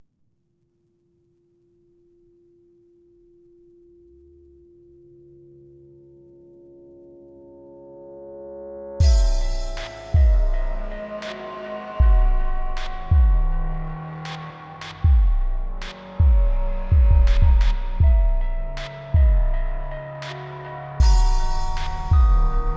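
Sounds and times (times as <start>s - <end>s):
main theme music: 9.0s - 22.7s.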